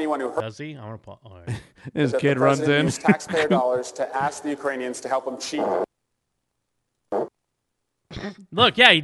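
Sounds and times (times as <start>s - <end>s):
speech: 0.0s - 5.9s, 8.2s - 9.0s
laughter: 1.5s - 4.5s
man letting out a short buzzy fart: 7.1s - 7.4s.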